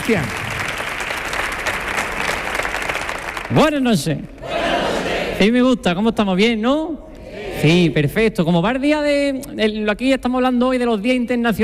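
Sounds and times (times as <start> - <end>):
large audience applauding to welcome a performer: 0.0 - 3.9
speech: 0.1 - 0.4, 3.5 - 4.8, 5.4 - 11.6.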